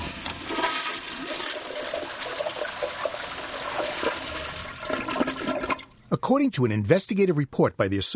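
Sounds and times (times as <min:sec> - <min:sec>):
toilet flushing: 0:00.0 - 0:06.1
speech: 0:06.1 - 0:08.1.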